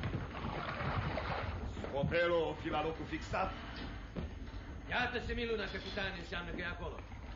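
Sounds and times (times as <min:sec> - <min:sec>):
continuous wash of water: 0:00.2 - 0:03.0
rowing boat oars dipping and splashing: 0:00.3 - 0:02.0
speech: 0:02.0 - 0:03.9, 0:04.9 - 0:07.2.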